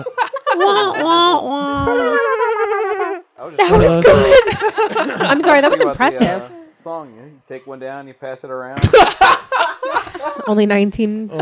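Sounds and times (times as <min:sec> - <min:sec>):
speech: 0:00.0 - 0:02.2, 0:03.5 - 0:11.4
person imitating a video game dog's snickering laugh: 0:00.0 - 0:03.2.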